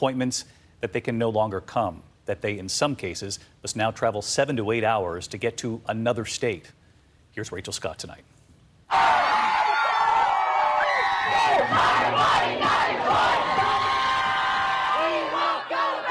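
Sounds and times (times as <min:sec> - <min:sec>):
speech: 0:00.0 - 0:06.8, 0:07.4 - 0:09.1
whoops and yells from a crowd: 0:08.9 - 0:11.8
large outdoor crowd cheering and shouting in front of the Supreme Court: 0:08.9 - 0:16.1.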